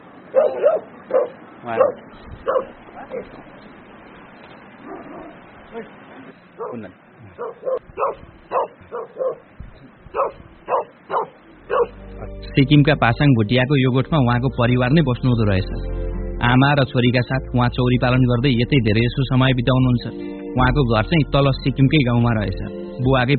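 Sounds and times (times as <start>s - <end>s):
dogs barking and yipping while chasing each other in Sikkim: 0.2s - 3.4s, 4.8s - 5.4s, 6.5s - 6.8s, 7.4s - 12.2s
dogs whimpering: 0.4s - 3.4s, 6.6s - 9.4s, 10.1s - 11.9s
speech: 1.6s - 3.7s, 5.0s - 10.5s, 12.6s - 23.3s.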